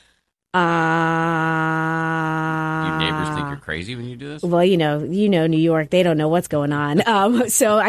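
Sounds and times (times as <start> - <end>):
speech: 0.5 - 1.0, 3.0 - 7.8
voice holding a single vowel ah as a breath in tonal meditation: 0.6 - 4.0.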